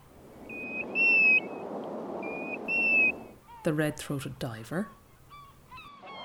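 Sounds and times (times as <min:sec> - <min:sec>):
plover calling with plaintive whistles on an estuary: 0:00.5 - 0:03.6
speech: 0:03.6 - 0:05.0.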